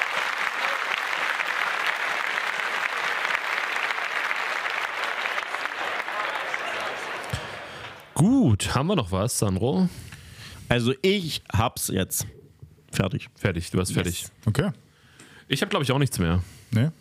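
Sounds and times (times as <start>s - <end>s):
group applauding the top three finishers of two tournaments: 0.0s - 8.2s
speech: 8.2s - 10.1s, 10.7s - 14.8s, 15.5s - 16.9s.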